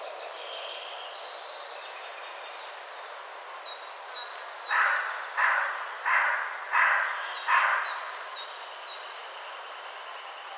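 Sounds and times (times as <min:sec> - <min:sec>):
carrion crow Corvus corone giving harsh caws: 0:04.7 - 0:07.8.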